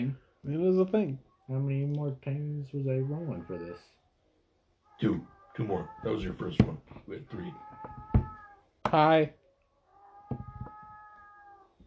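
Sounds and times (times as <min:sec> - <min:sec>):
speech: 0:00.1 - 0:04.0, 0:05.0 - 0:08.0, 0:08.9 - 0:09.4
cat long drawn-out meow: 0:03.1 - 0:03.9, 0:04.9 - 0:06.6, 0:07.2 - 0:08.6, 0:09.9 - 0:11.8.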